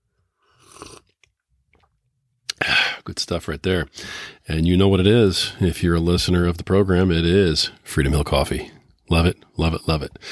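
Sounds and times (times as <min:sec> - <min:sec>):
person slurping coffee: 0:00.4 - 0:01.9
quiet swallow: 0:00.4 - 0:02.0
speech: 0:03.1 - 0:10.3.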